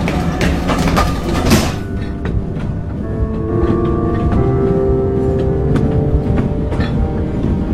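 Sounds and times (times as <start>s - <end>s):
train rolling along the rails heard from on board: 0.0s - 7.7s.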